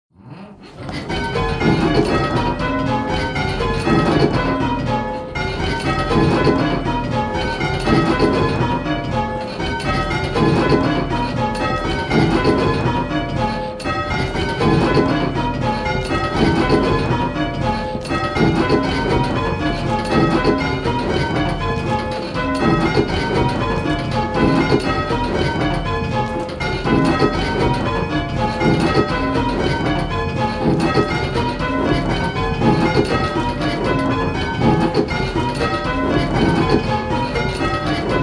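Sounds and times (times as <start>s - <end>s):
bells ringing: 0.6s - 38.2s.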